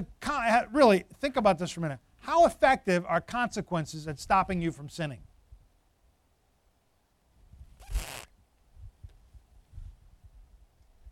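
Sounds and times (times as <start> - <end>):
speech: 0.0 - 5.3
zipper being pulled: 7.8 - 8.3.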